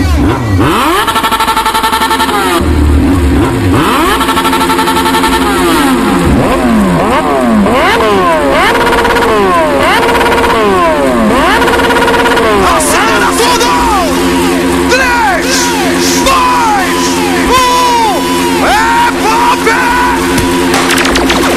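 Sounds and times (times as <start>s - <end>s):
motorcycle-like engine revving: 0.0s - 21.5s
loud dance music from a live sound-system party: 12.5s - 20.7s.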